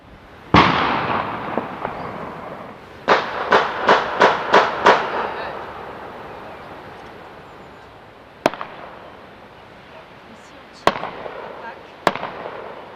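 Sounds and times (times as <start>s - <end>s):
lingering rumble: 0.0s - 12.9s
celebratory rifle shots fired into the air outdoors: 0.5s - 5.9s, 8.4s - 9.1s, 10.8s - 12.9s.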